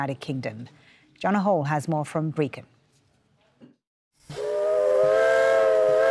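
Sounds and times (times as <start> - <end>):
speech: 0.0 - 2.8
steam locomotive whistle on the Brecon and Merthyr heritage railway in Wales: 4.3 - 6.0.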